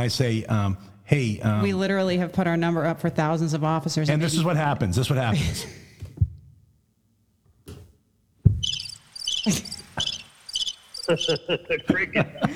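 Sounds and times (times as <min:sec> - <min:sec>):
speech: 0:00.0 - 0:05.8, 0:09.4 - 0:09.7, 0:11.1 - 0:12.5
low thumps and clicks: 0:08.4 - 0:08.9
cricket chirping sound effect: 0:08.5 - 0:12.0
laughter: 0:09.5 - 0:10.1, 0:11.0 - 0:12.5.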